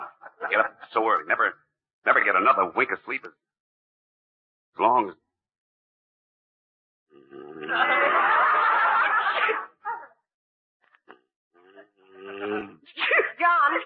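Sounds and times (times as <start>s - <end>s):
laughter: 0.0s - 1.2s, 7.6s - 10.0s
speech: 0.5s - 3.5s, 4.8s - 5.2s
loud drawn-out sneeze: 9.2s - 9.8s.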